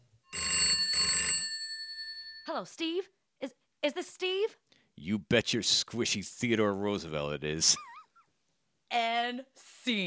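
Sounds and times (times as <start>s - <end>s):
telephone ringing with trilling electronic bell: 0.3s - 2.5s
speech: 2.5s - 7.9s, 8.9s - 10.0s.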